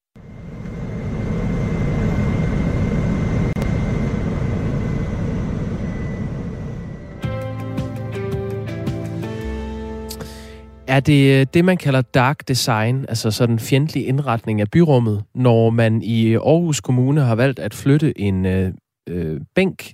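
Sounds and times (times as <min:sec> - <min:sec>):
electric-powered airplane flying: 0:00.2 - 0:07.7
speech: 0:10.9 - 0:19.9.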